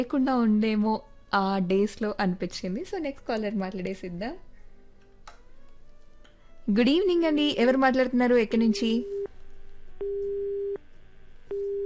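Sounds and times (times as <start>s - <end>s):
speech: 0.0s - 4.5s, 6.7s - 9.2s
faint low hum: 8.2s - 11.8s
telephone busy tone after a dropped call: 10.0s - 10.8s, 11.5s - 11.8s.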